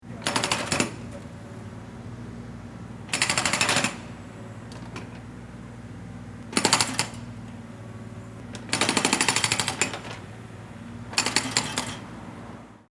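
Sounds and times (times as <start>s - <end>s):
jackhammer: 0.2s - 1.0s, 3.1s - 4.0s, 6.6s - 7.2s, 8.7s - 10.1s, 11.1s - 12.0s.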